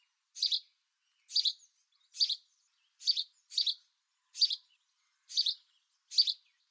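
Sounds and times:
male house sparrow song of double chirps: 0.4 - 0.7, 1.3 - 3.8, 4.4 - 6.6.

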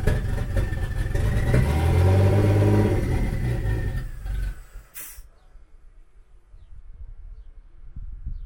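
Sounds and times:
untuned car with T67 turbocharger idling with open downpipe: 0.0 - 5.0.

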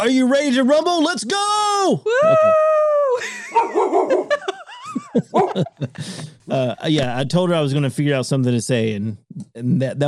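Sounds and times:
speech: 0.0 - 10.0
people talking and laughing: 2.1 - 6.8
dog barking with a long high-pitched note: 3.6 - 4.4, 5.3 - 5.7.

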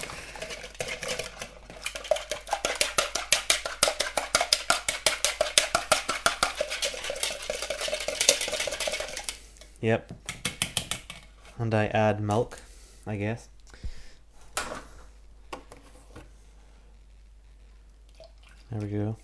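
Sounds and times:
utensil whisking eggs for pancake batter against a bowl: 0.4 - 9.4, 10.2 - 11.2
speech: 9.8 - 10.2, 11.6 - 13.5, 18.8 - 19.2.

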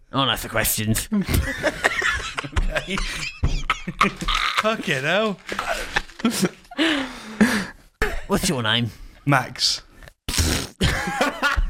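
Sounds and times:
speech: 0.1 - 2.1, 2.8 - 3.4, 4.0 - 7.1, 8.3 - 9.8
laughter: 1.1 - 7.6, 10.8 - 11.6
person blowing a raspberry imitating a fart: 10.3 - 10.8.

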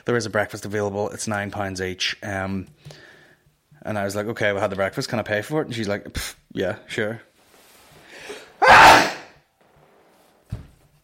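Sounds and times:
speech: 0.0 - 3.1, 3.8 - 7.3
person sneezing aggressively after inhaled build-up: 8.2 - 9.3
faint thump or shuffle: 10.5 - 10.8.

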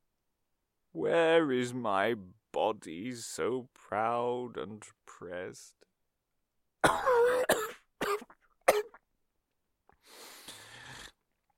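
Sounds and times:
speech: 1.0 - 5.9, 6.8 - 7.5
person coughing harshly with hacking coughs: 6.8 - 9.0.

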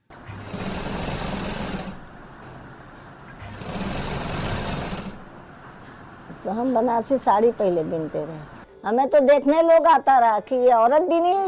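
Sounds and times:
sewing machine running in a home: 0.0 - 2.4, 3.4 - 5.3
speech: 6.5 - 11.4.

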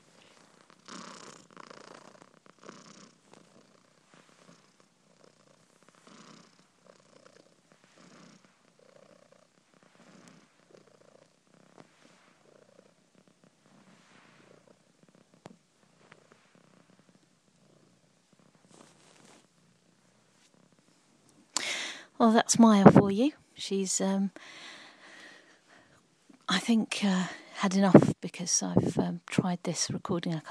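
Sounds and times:
female tortoiseshell domestic cat purring loudly: 0.0 - 21.4
speech: 22.2 - 24.6, 26.7 - 30.4.

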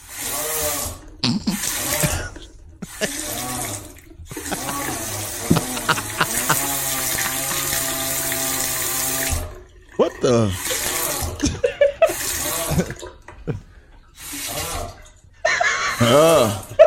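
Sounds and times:
hot water faucet groaning with steady harmonic tones: 0.0 - 16.8
laughter: 1.2 - 3.6, 4.3 - 8.0, 10.2 - 13.7, 15.4 - 16.8
person making a brief spoken exclamation: 4.5 - 6.7, 10.0 - 10.7
speech: 10.3 - 10.6, 16.1 - 16.6.

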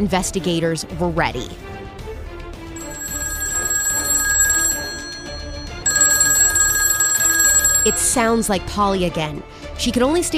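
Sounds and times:
speech: 0.0 - 1.7, 7.9 - 10.3
home telephone ringing with an incoming call: 2.7 - 8.5.

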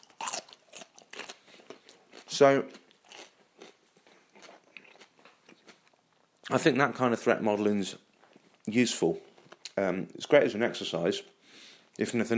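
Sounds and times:
person biting and chewing a raw radish: 0.0 - 6.6
speech: 2.4 - 2.8, 6.5 - 8.1, 8.7 - 11.4, 12.0 - 12.3.

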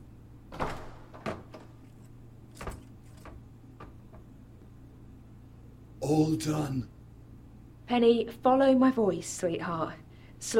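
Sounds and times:
steady low hum: 0.0 - 10.5
hatch being opened to the outside clunking and scraping: 0.9 - 4.4
speech: 6.1 - 7.0, 7.9 - 10.5.

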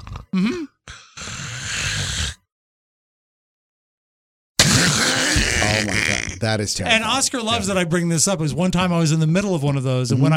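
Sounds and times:
voice imitating a gentle snore: 0.0 - 2.5, 4.6 - 6.4
speech: 0.4 - 0.8, 6.4 - 10.3.

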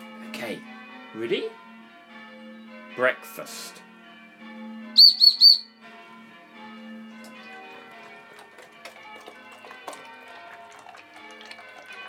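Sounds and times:
church bells ringing: 0.0 - 12.0
speech: 0.4 - 1.6, 3.0 - 3.8
bird chirping: 5.0 - 5.7.

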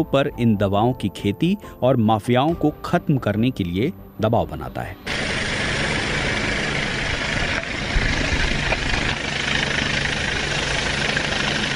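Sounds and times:
speech: 0.0 - 5.1
helicopter flying overhead: 5.0 - 11.7.

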